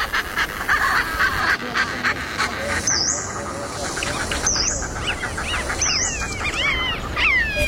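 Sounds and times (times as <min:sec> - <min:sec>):
Richard's pipit calling: 0:00.0 - 0:07.6
busy bird chatter: 0:00.0 - 0:07.6
honking quacking waterfowl: 0:00.0 - 0:07.6.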